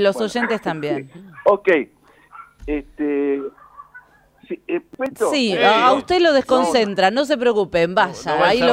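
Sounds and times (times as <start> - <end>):
speech: 0.0 - 2.0, 2.6 - 3.6, 4.5 - 8.7
dog barking: 0.1 - 1.6, 2.2 - 2.6, 3.3 - 4.3.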